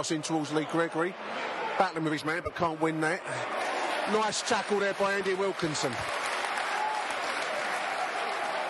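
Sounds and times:
speech: 0.0s - 6.2s
football crowd applauding in a stadium: 2.9s - 8.6s.

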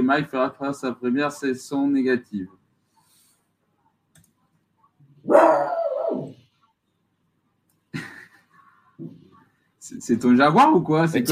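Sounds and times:
speech: 0.1s - 2.6s, 5.2s - 6.3s, 9.9s - 11.3s
dog howling: 5.3s - 6.4s
laughter: 7.9s - 9.0s.

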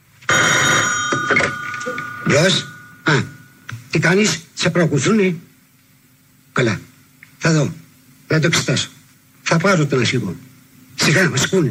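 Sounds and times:
telephone bell ringing: 0.3s - 3.7s
speech: 2.3s - 3.3s, 3.9s - 5.5s, 6.6s - 11.6s.

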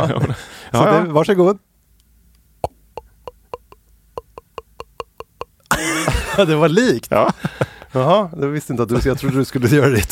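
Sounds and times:
speech: 0.0s - 1.7s, 6.4s - 10.0s
voice imitating wine being poured with hollow popping glugs: 2.6s - 5.7s
laughter: 3.6s - 8.1s.

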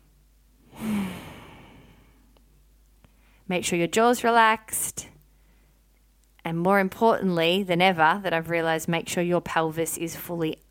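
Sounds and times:
deep breathy sigh during guided relaxation: 0.6s - 2.3s
speech: 3.5s - 5.1s, 6.4s - 10.6s.

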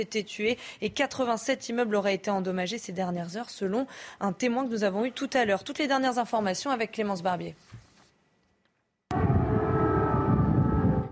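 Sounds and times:
speech: 0.0s - 7.8s
air raid siren blaring: 9.1s - 11.1s.

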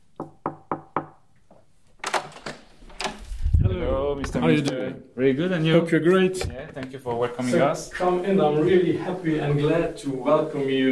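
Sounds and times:
knocking on the door of a government technology lab: 0.2s - 1.2s
latch or door being opened: 2.0s - 3.2s
speech: 4.2s - 10.8s.

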